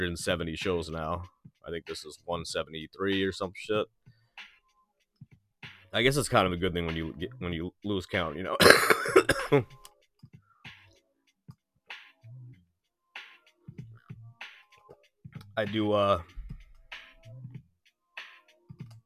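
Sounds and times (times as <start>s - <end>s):
speech: 0.0s - 4.0s, 5.9s - 9.8s, 15.6s - 16.4s
man clearing his throat: 8.6s - 9.7s
man coughing: 8.6s - 9.7s.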